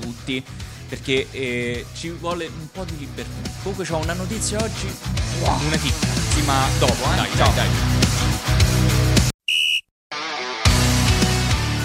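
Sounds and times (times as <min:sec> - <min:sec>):
speech: 0:00.3 - 0:08.5
loud upbeat music with a heavy bass beat: 0:02.0 - 0:09.3, 0:10.7 - 0:11.8
referee whistle blast signalling start of a half: 0:09.4 - 0:09.9.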